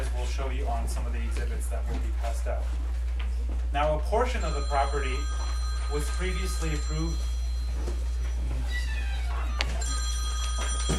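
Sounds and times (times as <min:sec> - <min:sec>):
steady low hum: 0:00.0 - 0:10.9
speech: 0:00.5 - 0:08.1
phone ringing with a short bright electronic tone pattern during a meeting: 0:04.3 - 0:08.5, 0:09.2 - 0:10.9.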